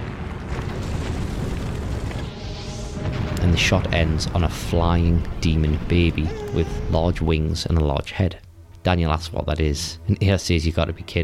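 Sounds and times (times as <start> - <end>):
planes exploding on an aircraft carrier: 0.0 - 8.5
speech: 3.6 - 11.2.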